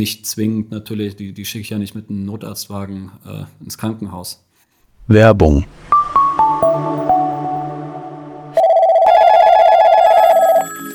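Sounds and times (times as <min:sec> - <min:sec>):
speech: 0:00.0 - 0:04.5, 0:05.1 - 0:07.1
short descending run of chiming electronic notes: 0:06.0 - 0:10.9
loud steady electronic telephone ring: 0:08.6 - 0:10.9.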